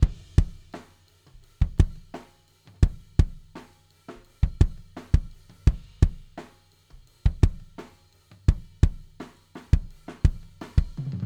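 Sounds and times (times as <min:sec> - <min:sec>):
kick drum: 0:00.0 - 0:00.8, 0:01.6 - 0:02.2, 0:02.8 - 0:03.6, 0:04.4 - 0:06.4, 0:07.2 - 0:07.9, 0:08.5 - 0:11.2.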